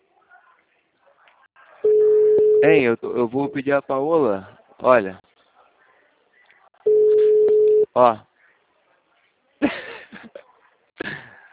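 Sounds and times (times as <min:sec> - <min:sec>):
telephone busy signal heard while placing a call: 0:01.8 - 0:02.8, 0:06.9 - 0:07.9
speech: 0:02.6 - 0:05.2, 0:08.0 - 0:08.3.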